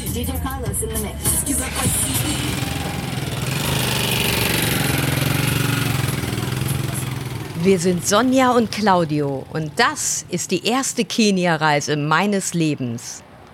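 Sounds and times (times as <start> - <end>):
rattly Kenyan matatu minibus engine running: 0.0 - 11.8
speech: 0.2 - 3.0, 7.6 - 13.3.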